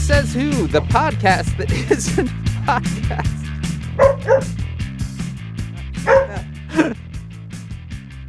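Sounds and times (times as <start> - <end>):
speech: 0.1 - 4.6
laughter: 1.6 - 4.4, 5.1 - 7.0
female dog barking in sharp yaps: 4.0 - 4.6, 6.0 - 6.5.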